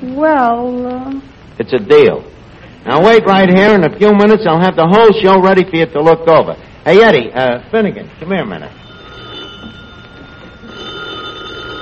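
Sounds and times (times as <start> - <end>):
speech: 0.2 - 8.8
telephone bell ringing: 8.8 - 11.7.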